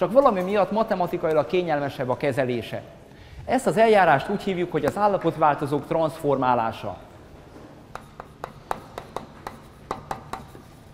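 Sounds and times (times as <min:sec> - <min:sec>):
speech: 0:00.0 - 0:07.1
writing on a board during a lecture: 0:07.9 - 0:10.9.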